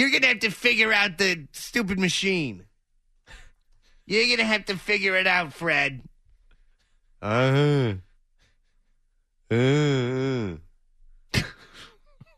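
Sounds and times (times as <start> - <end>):
speech: 0.0 - 2.7, 4.1 - 6.1, 7.2 - 8.1, 9.5 - 10.6
person imitating snoring: 7.2 - 8.0, 9.5 - 10.6.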